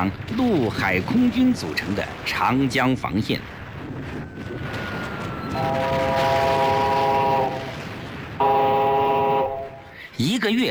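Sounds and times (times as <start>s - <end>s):
speech: 0.0s - 3.6s, 5.6s - 6.4s, 10.2s - 10.6s
train pulling into a small railway station: 0.0s - 10.3s
train horn blasts: 5.6s - 7.8s, 8.4s - 10.0s.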